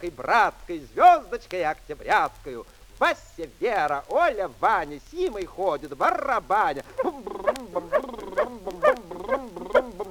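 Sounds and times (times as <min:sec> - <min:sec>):
speech: 0:00.0 - 0:09.8
small dog like a puppy giving high yappy barks and yips: 0:06.9 - 0:10.0.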